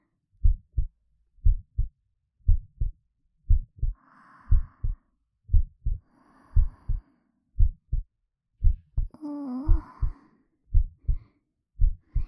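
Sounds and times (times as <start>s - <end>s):
heartbeat heard close to the chest: 0.4s - 1.9s, 2.5s - 6.0s, 6.6s - 7.0s, 7.6s - 11.2s, 11.8s - 12.2s
soft breathy swells: 3.8s - 7.8s, 9.2s - 12.2s.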